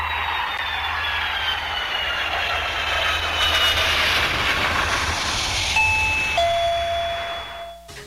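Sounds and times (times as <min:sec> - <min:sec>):
rushing rumbling noise: 0:00.0 - 0:07.7
doorbell chiming in descending tones: 0:05.8 - 0:08.0.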